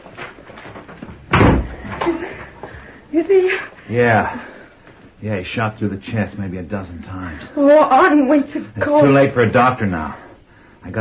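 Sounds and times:
door slamming shut: 1.1s - 2.2s
speech: 3.1s - 4.5s, 5.2s - 10.2s.

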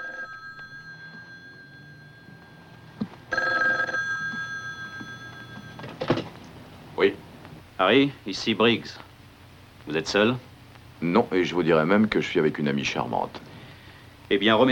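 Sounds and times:
telephone bell ringing in short bright bursts: 0.0s - 6.1s
faint steady hum: 0.0s - 14.7s
speech: 7.0s - 7.2s, 7.8s - 9.1s, 9.9s - 13.5s, 14.3s - 14.7s.

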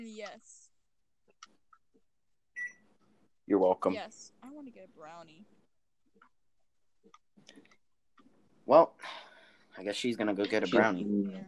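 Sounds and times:
speech: 0.0s - 0.6s, 3.5s - 5.6s, 8.7s - 9.2s, 9.8s - 11.4s
microwave oven beep: 2.6s - 2.8s.

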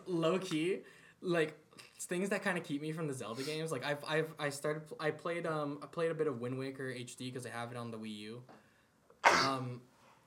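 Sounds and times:
speech: 0.1s - 8.6s, 9.3s - 9.9s
single loud sneeze: 3.4s - 3.6s, 9.2s - 9.7s.

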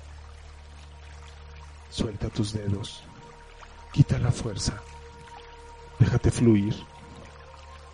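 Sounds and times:
water pouring over open hands: 0.0s - 7.9s
speech: 2.0s - 3.1s, 3.9s - 4.9s, 6.0s - 6.9s.

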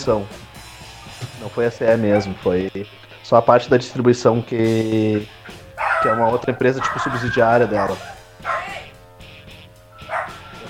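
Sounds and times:
speech: 0.0s - 0.4s, 1.4s - 5.4s, 6.0s - 8.6s
dog barking: 2.0s - 2.5s, 5.4s - 8.9s, 10.0s - 10.6s.

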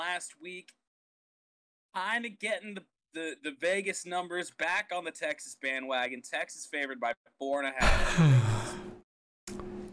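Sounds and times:
speech: 0.2s - 0.8s, 1.9s - 8.9s
person yawning: 7.8s - 8.9s
person sighing: 7.8s - 9.0s.

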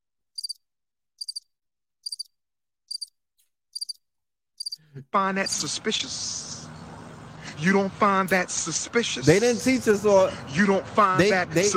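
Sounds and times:
crickets chirping: 0.4s - 0.6s, 1.2s - 1.4s, 2.0s - 2.3s, 2.9s - 3.1s, 3.8s - 4.0s, 4.6s - 4.8s
speech: 5.0s - 6.4s, 7.6s - 11.7s.

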